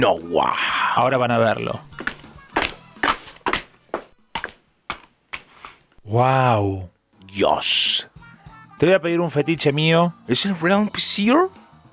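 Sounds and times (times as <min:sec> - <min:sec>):
speech: 0:00.0 - 0:01.9, 0:06.1 - 0:08.1, 0:08.8 - 0:11.6
footsteps approaching at night: 0:00.0 - 0:06.0.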